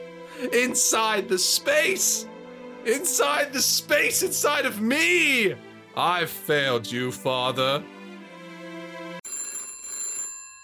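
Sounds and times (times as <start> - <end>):
speech: 0.4 - 8.0
telephone bell ringing for an incoming call: 9.2 - 10.6.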